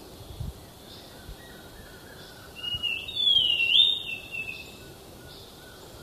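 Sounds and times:
faint background hiss: 0.0 - 6.0
thrush-like schiffornis song in Ecuador: 2.6 - 4.8.

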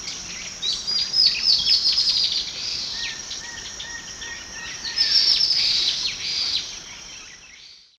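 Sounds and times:
male dot-winged antwren Microrhopias quixensis songs and calls: 0.0 - 7.9.

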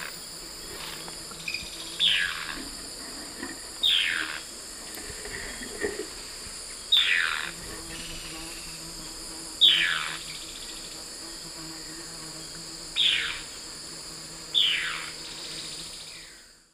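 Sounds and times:
Phlegopsis erythroptera calling in South American eastern lowlands: 1.5 - 2.7, 3.8 - 4.5, 6.9 - 8.1, 13.0 - 13.5, 14.5 - 15.1.

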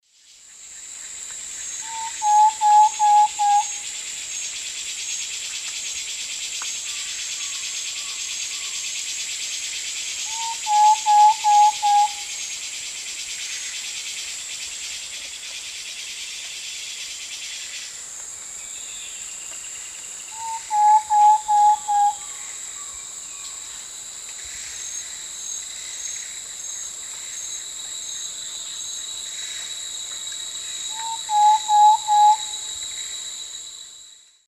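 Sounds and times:
Mytmothera campanisona singing in the Eastern Lowlands of South America: 1.8 - 4.0, 10.2 - 12.4, 18.6 - 23.7, 30.8 - 33.2.

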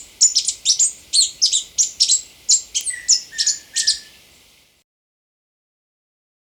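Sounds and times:
plushcap song in Ecuador: 0.0 - 4.6.

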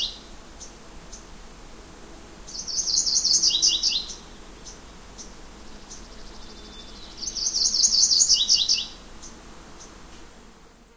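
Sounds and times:
yellow-rumped warbler trilling song: 0.0 - 1.3, 2.5 - 10.0.

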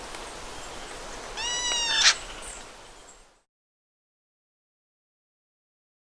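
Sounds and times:
light hiss: 0.0 - 3.4
strong-billed woodcreeper call in South America: 1.4 - 2.6.

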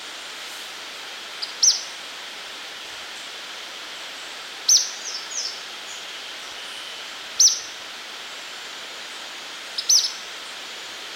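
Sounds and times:
background hiss: 0.0 - 11.1
Ornate flycatcher calling in Ecuador: 1.4 - 2.0, 4.6 - 7.8, 9.7 - 10.6.

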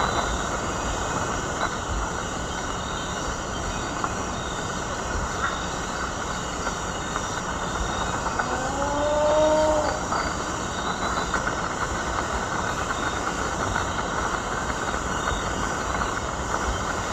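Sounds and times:
steady dense background hiss: 0.0 - 17.1
Rufescent tiger heron Tigrisoma lineatum giving a low moaning call in the Eastern Lowlands of South America: 8.4 - 10.2.

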